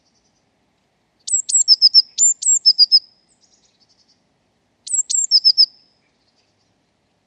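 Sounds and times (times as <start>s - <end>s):
Eurasian blue tit giving high piercing double notes: 1.2s - 4.2s, 4.8s - 5.9s.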